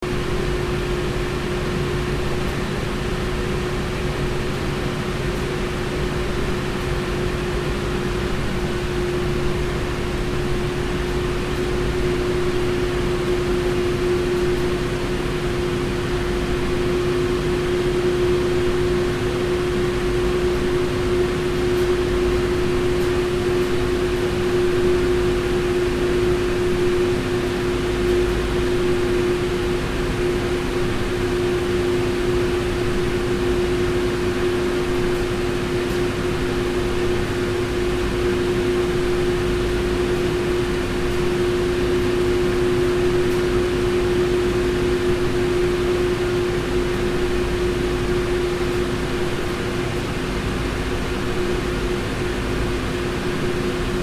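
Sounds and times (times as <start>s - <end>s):
cinema air conditioning: 0.0s - 54.0s.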